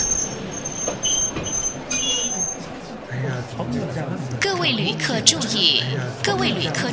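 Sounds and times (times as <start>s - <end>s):
train wheels squealing while grinding to a halt: 0.0s - 2.9s
train rumbling: 0.0s - 6.9s
speech: 4.6s - 6.9s.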